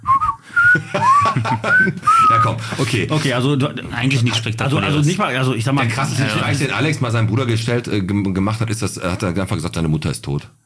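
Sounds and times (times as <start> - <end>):
forester whistling a short wavering tune: 0.0 - 2.5
faint low noise: 0.0 - 10.6
laughter: 0.6 - 3.4, 4.9 - 7.0
speech: 1.8 - 10.6.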